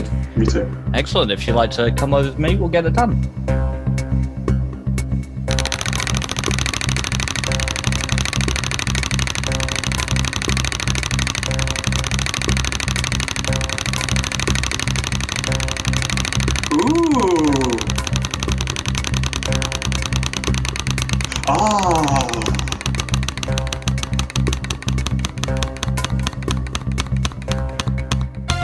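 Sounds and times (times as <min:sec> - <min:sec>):
continuous tonal background: 0:00.0 - 0:28.6
speech: 0:00.4 - 0:03.5
prize wheel spinning and clicking: 0:05.5 - 0:28.4.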